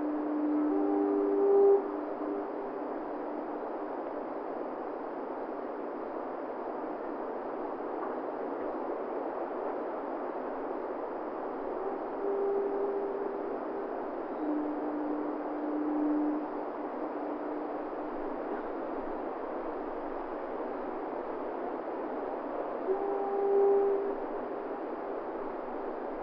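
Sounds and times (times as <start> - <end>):
low steady foghorn tones: 0.0 - 3.8, 11.6 - 19.7, 22.8 - 26.0
constant wash of wind or sea noise: 0.0 - 26.2.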